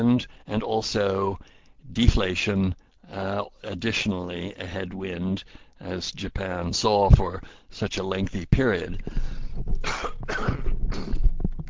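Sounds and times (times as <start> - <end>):
speech: 0.0 - 10.6
throat-clearing cough during a spoken presentation: 9.8 - 11.2.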